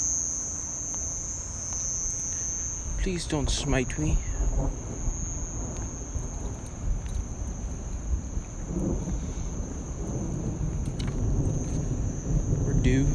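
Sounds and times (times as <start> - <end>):
low heavy thunder rumbling: 2.8 - 13.1
raindrops pattering: 2.9 - 13.1
speech: 3.0 - 5.0
steady rainfall: 4.4 - 13.1.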